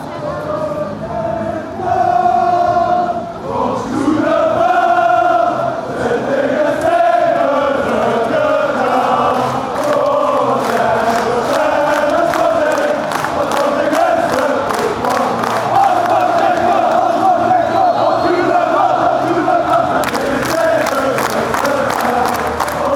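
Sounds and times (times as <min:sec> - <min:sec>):
person singing in Lokeren: 0:00.3 - 0:22.9.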